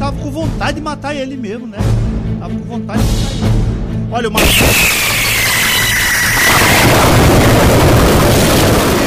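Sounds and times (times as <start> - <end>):
speech: 0.4 - 5.2
firework rocket whistling: 4.4 - 9.0.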